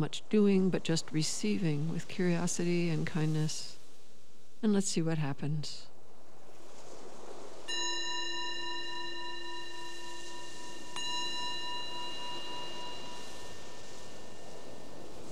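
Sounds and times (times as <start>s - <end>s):
speech: 0.0s - 3.8s, 4.6s - 5.9s
soft hiss: 0.0s - 15.3s
meditation bell ringing: 7.7s - 15.0s.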